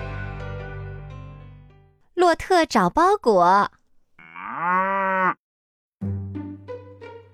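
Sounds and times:
speech: 2.3 - 3.8
cow mooing: 4.2 - 5.4.

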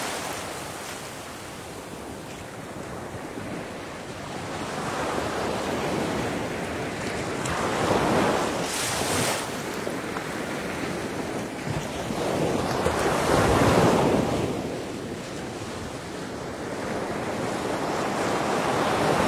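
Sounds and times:
sharp splash of sea waves: 0.0 - 2.0, 4.8 - 15.4
faint wind: 0.0 - 19.2
summer sea waves washing in: 0.0 - 19.2.

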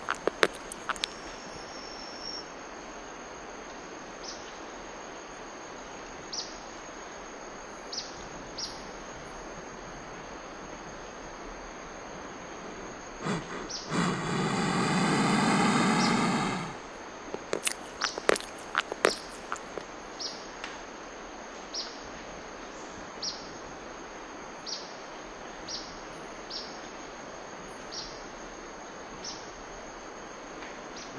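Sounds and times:
steady high insect drone in a jungle: 0.0 - 2.4, 11.7 - 19.9.

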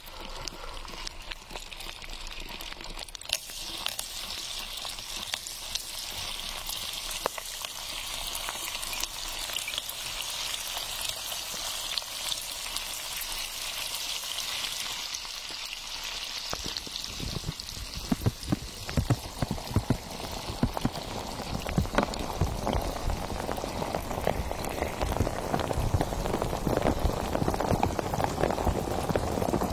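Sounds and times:
sparkling water fizzing with tiny popping bubbles: 0.0 - 29.7.

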